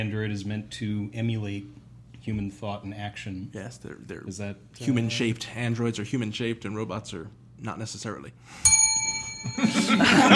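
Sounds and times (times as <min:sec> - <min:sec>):
speech: 0:00.0 - 0:08.8, 0:09.4 - 0:10.3
bright bell rung for a correct answer: 0:08.7 - 0:10.3
people laughing: 0:09.5 - 0:10.3.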